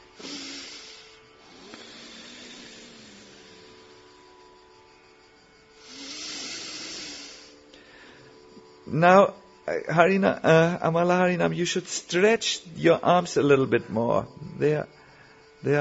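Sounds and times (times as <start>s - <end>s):
deep breathing: 0.0s - 4.2s, 5.8s - 8.5s, 14.4s - 15.6s
quiet steady tonal hum: 0.0s - 15.7s
speech: 8.9s - 15.0s.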